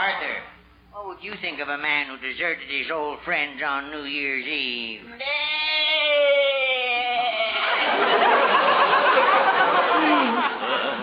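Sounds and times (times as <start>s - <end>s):
speech: 1.2s - 6.2s
goat bleating: 5.2s - 7.4s
audience laughing: 7.4s - 11.0s.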